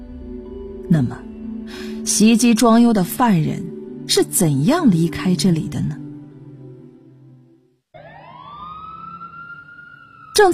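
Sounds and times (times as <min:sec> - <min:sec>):
speech: 0:00.9 - 0:06.0, 0:10.4 - 0:10.5
police car siren approaching: 0:08.0 - 0:10.5.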